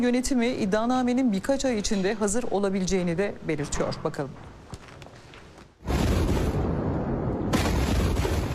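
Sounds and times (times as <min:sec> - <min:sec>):
speech: 0:00.0 - 0:04.5
massive explosion rumbling: 0:05.8 - 0:08.5.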